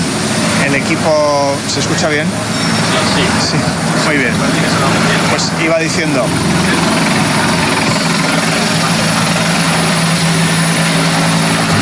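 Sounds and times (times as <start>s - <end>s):
firefighting aircraft rotor and engine drone passing overhead during a wildfire: 0.0s - 11.8s
speech: 0.8s - 7.6s.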